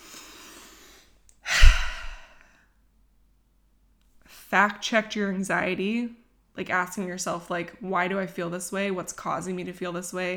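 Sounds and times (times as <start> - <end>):
deep breath in and out: 0.0 - 2.5
speech: 4.5 - 10.3.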